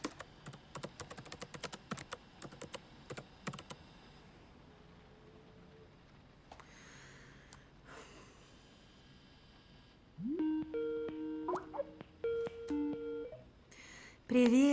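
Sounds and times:
woman typing a message on a computer keyboard: 0.0s - 3.8s
electronic beeping tones: 10.2s - 13.4s.

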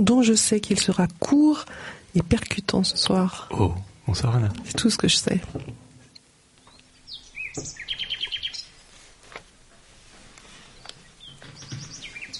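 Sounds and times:
speech: 0.0s - 5.9s, 7.6s - 7.8s
quiet hiss: 0.0s - 12.3s
nightingale singing through an open window in spring: 6.1s - 8.9s, 10.7s - 12.3s.

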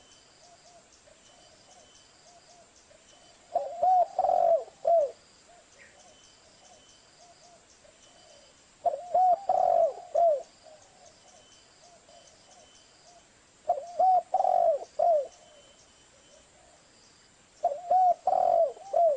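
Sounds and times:
spotted dove cooing on a lure recording: 3.5s - 16.8s, 17.6s - 19.1s.

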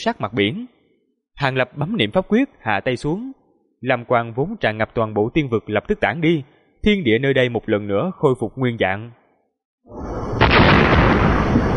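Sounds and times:
speech: 0.0s - 0.8s, 1.4s - 9.2s, 9.9s - 10.1s
thunderous explosion: 9.9s - 11.7s
huge water column crashing into the sea: 10.3s - 11.7s.

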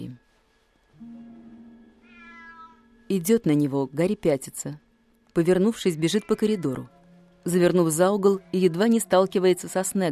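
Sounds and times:
cat meowing: 2.0s - 3.0s, 5.8s - 7.0s
speech: 3.1s - 10.1s.

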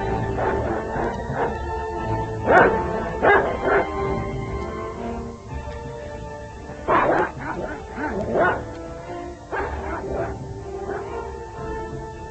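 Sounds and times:
dog barking at someone approaching: 0.1s - 4.1s, 6.8s - 8.7s, 9.5s - 11.3s.

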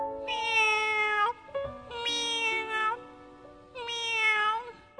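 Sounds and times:
kitten found at a roadside mewing: 0.2s - 3.0s, 3.8s - 4.9s.

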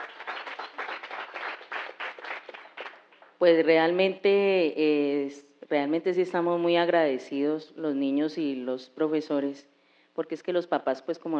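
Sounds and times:
audience applauding at the closing event of a children's workshop: 0.0s - 3.4s
speech: 3.4s - 11.3s.

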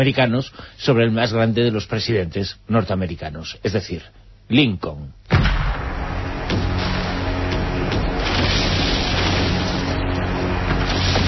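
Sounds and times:
speech: 0.0s - 5.4s
artillery bombardment from a naval fleet in a film scene: 5.3s - 11.2s.

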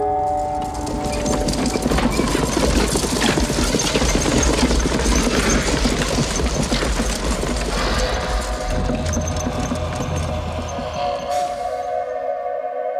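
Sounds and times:
horse hooves clip-clopping of a horse-drawn carriage: 0.1s - 11.9s
horse-drawn carriage rolling rumble: 0.1s - 11.9s
sustained tones: 7.7s - 12.8s.

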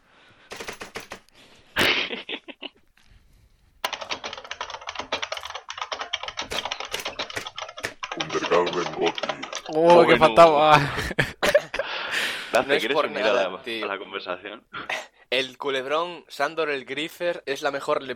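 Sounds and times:
laughter: 1.8s - 2.8s, 8.2s - 12.1s
hammer pounding on a computer keyboard: 3.9s - 9.7s
speech: 8.6s - 11.3s, 12.5s - 14.7s, 15.4s - 18.1s.

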